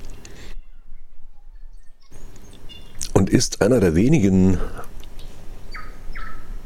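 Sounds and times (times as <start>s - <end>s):
tui giving harsh guttural croaking calls: 2.0s - 3.1s, 4.6s - 6.6s
speech: 3.3s - 4.9s
tui giving short clear whistled notes: 5.7s - 6.6s.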